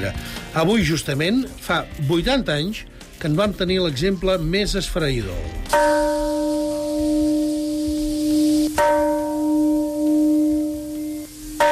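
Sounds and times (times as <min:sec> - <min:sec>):
speech: 0:00.0 - 0:06.4
peace bell tolling at memorial in Hiroshima: 0:05.7 - 0:07.9, 0:08.6 - 0:11.6.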